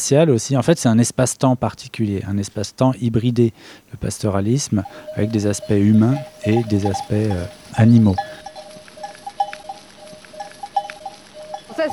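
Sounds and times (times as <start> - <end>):
speech: 0.1 - 8.4
bells on a flock of ewes clanking and tinkling: 4.4 - 11.9.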